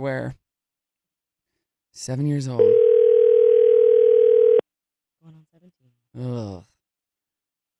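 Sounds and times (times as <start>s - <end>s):
speech: 0.0s - 0.4s, 2.0s - 2.8s, 6.2s - 6.7s
telephone dial tone while placing a call: 2.6s - 4.6s.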